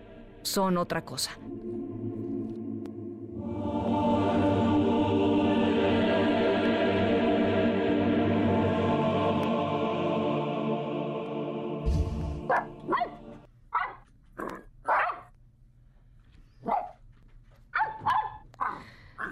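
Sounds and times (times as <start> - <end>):
speech: 0.4 - 1.7
steady humming tone: 1.4 - 13.5
dog barking: 12.5 - 14.0, 14.8 - 15.3, 16.6 - 17.0, 17.7 - 18.8.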